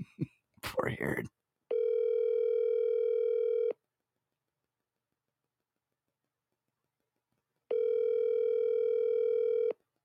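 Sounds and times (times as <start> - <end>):
speech: 1.0 - 1.4
phone line ringback tones: 1.7 - 3.7, 7.7 - 9.7.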